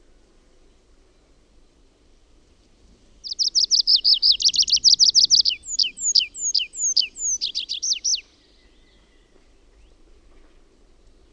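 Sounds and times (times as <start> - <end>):
tree pipit singing a rapid high trill: 3.2 - 10.0.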